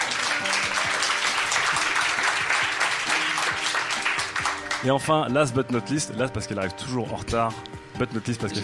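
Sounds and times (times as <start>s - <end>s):
audience applause: 0.0s - 4.9s
speech: 4.8s - 8.6s.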